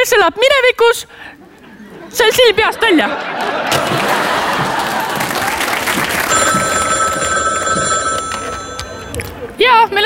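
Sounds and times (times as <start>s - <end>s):
speech: 0.0s - 1.5s, 2.1s - 4.4s, 9.6s - 10.0s
crowd noise: 1.3s - 10.0s
laughter: 1.4s - 6.3s
loud applause: 3.4s - 7.2s
telephone ringing with bright electronic trill: 6.2s - 9.5s.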